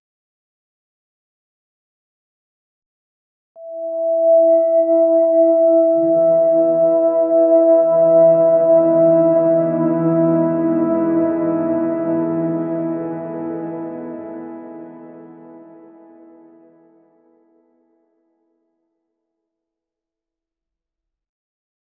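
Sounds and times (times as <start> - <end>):
light ambient music: 3.6 - 17.9.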